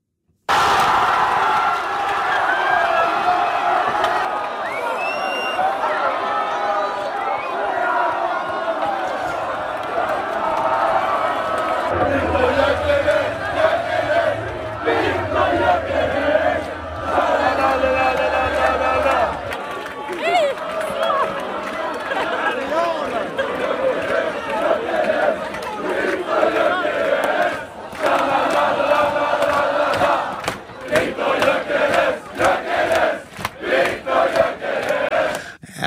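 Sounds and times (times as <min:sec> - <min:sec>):
large stadium football crowd cheering a goal: 0:00.5 - 0:35.6
scattered whistles: 0:04.6 - 0:05.8, 0:06.6 - 0:07.7.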